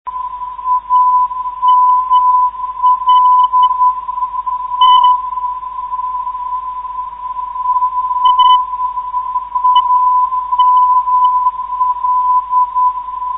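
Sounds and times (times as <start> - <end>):
402 kHz NDB radio beacon signal: 0.1 - 13.3.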